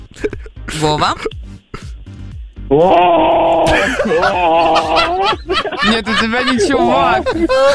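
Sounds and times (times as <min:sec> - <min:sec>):
speech: 0:00.2 - 0:01.4, 0:02.7 - 0:07.7
person imitating a screaming marmot: 0:02.7 - 0:05.3
laughter: 0:02.8 - 0:07.7.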